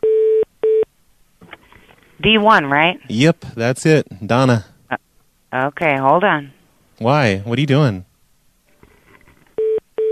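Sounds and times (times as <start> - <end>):
low noise: 0.0 - 10.1
speech: 2.2 - 4.7, 5.5 - 8.1
telephone keypad dialing tones: 9.6 - 10.1.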